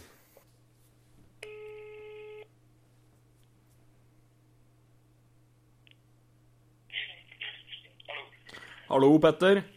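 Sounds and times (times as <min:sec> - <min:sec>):
low constant hum: 0:00.0 - 0:09.7
electronic telephone ringback tone while placing a call on a borrowed phone: 0:01.4 - 0:02.5
speech: 0:08.9 - 0:09.7.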